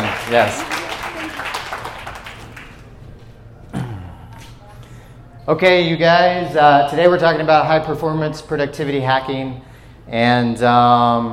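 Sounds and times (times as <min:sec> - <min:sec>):
audience applause: 0:00.0 - 0:03.0
speech: 0:00.3 - 0:00.8, 0:05.5 - 0:11.3.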